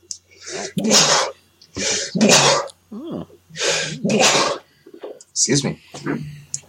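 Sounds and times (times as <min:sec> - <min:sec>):
series of sneezes: 0:00.5 - 0:04.7
speech: 0:00.8 - 0:01.3, 0:05.5 - 0:06.2.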